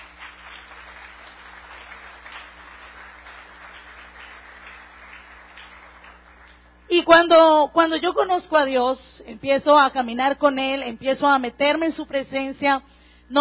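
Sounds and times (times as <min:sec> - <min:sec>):
church congregation applauding: 0:00.0 - 0:06.8
speech: 0:06.9 - 0:13.3.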